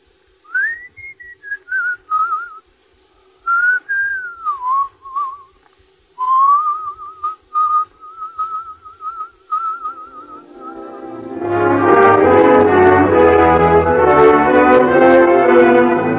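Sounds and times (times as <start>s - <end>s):
faint steady hum: 0.0s - 16.1s
person whistling a slow wavering melody: 0.5s - 2.6s, 3.4s - 5.6s, 6.2s - 11.3s.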